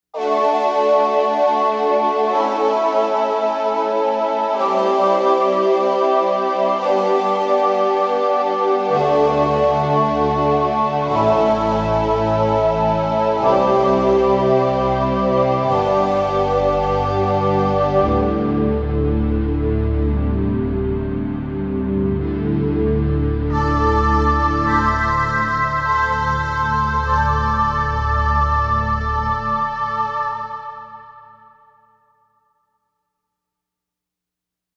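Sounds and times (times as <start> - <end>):
vocoder synth: 0.2 - 31.7.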